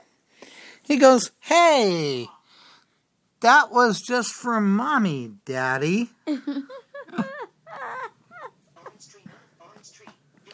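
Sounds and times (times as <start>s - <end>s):
speech: 0.8s - 2.4s, 3.4s - 7.3s
dog whimpering: 7.2s - 8.6s.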